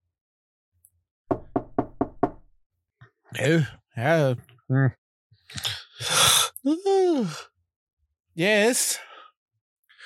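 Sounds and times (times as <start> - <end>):
firm knocking on a door as a wake-up call: 1.3 - 2.5
speech: 3.4 - 7.5, 8.4 - 9.1.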